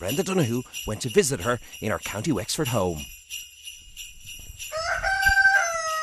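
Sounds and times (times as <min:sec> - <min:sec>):
speech: 0:00.0 - 0:03.2
rooster crowing at the front door of a home in County Wexford: 0:04.7 - 0:06.0.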